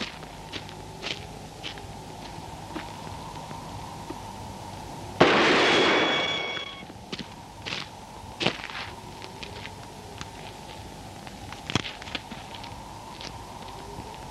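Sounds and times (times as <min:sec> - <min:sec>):
gunshot: 0:05.2 - 0:06.6.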